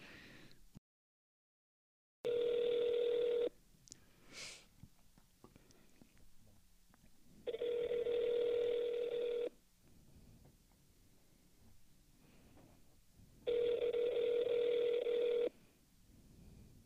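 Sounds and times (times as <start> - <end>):
faint breathing into microphones: 0.0 - 0.7, 3.9 - 4.8, 5.5 - 6.2, 9.8 - 13.4, 15.2 - 16.8
telephone ringback tone: 2.3 - 3.5, 7.5 - 9.6, 13.5 - 15.6.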